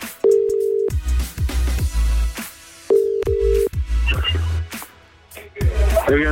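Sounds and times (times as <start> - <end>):
low thumping rhythmic background: 0.0 - 6.3
telephone ringback tone: 0.2 - 1.0, 2.9 - 3.7.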